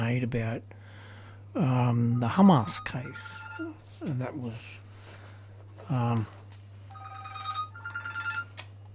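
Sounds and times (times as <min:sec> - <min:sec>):
speech: 0:00.2 - 0:00.9, 0:01.5 - 0:04.9, 0:05.9 - 0:06.4
mobile phone ringtone with bright repeating beeping notes: 0:01.9 - 0:03.8, 0:06.9 - 0:08.6.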